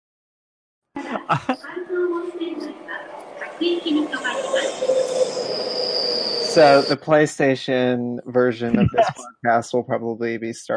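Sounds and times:
laughter: 1.0 - 1.7, 6.6 - 10.7
indistinct voices: 1.0 - 10.7
speech: 1.1 - 5.8, 6.6 - 10.7
train rumbling into a station: 1.3 - 8.8
thin high train brake squeal: 3.6 - 7.5.

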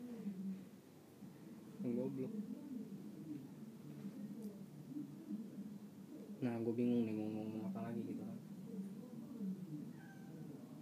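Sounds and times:
dull hum: 0.0 - 10.8
speech: 1.8 - 2.7, 6.4 - 8.5
pet cat meowing at home: 9.9 - 10.5.

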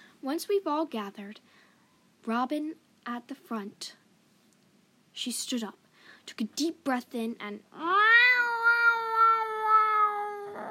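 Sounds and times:
speech: 0.2 - 1.6, 2.2 - 4.0, 5.2 - 8.0
cat meowing in a gravelly low voice: 7.8 - 10.7.

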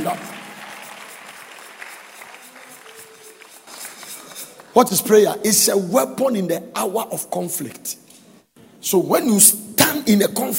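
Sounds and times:
speech: 0.0 - 0.4, 4.8 - 8.1, 8.8 - 10.5
audience clapping during a sermon: 0.0 - 5.1.

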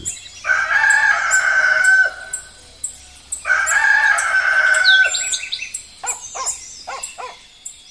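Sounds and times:
rooster crowing at dawn: 0.4 - 5.6
quick bird chirps and clucks: 2.3 - 7.5.

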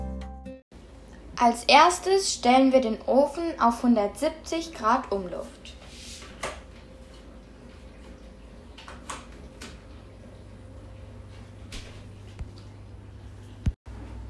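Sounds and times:
speech: 1.4 - 5.6
dishwasher running at home: 4.8 - 14.2.

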